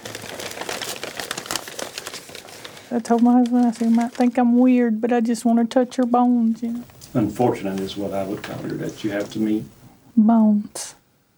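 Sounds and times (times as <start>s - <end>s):
brown paper crinkling as it is unwrapped from around a skull: 0.0s - 9.9s
speech: 2.9s - 11.0s.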